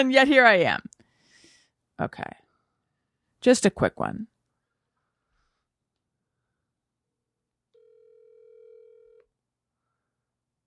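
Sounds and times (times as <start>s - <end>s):
speech: 0.0s - 0.9s, 2.0s - 2.4s, 3.4s - 4.3s
steady electronic phone ringing tone: 7.8s - 9.3s.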